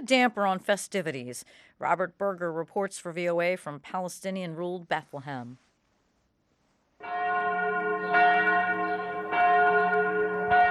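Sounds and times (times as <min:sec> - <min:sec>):
speech: 0:00.0 - 0:05.6
bells of the Church of the Nativity in Bethlehem ringing for Christmas: 0:07.0 - 0:10.6.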